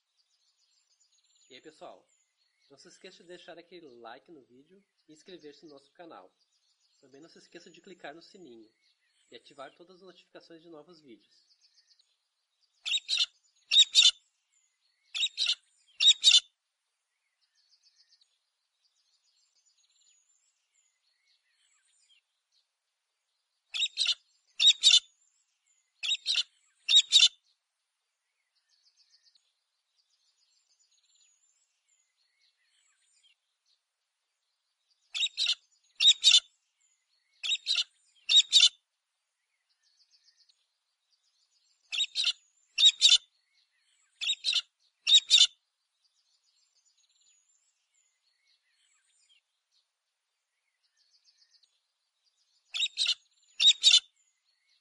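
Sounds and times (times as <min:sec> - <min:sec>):
galah cockatoo calling: 0:12.8 - 0:14.2, 0:15.2 - 0:16.5, 0:23.8 - 0:25.0, 0:26.0 - 0:27.4, 0:35.2 - 0:36.4, 0:37.4 - 0:38.8, 0:41.9 - 0:43.2, 0:44.2 - 0:45.5, 0:52.7 - 0:54.0.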